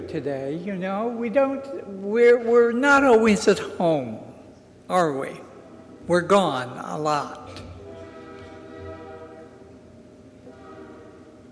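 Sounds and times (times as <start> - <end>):
speech: 0.0 - 4.3, 4.9 - 5.5, 6.1 - 7.4
passing train's horn blaring: 7.4 - 11.5.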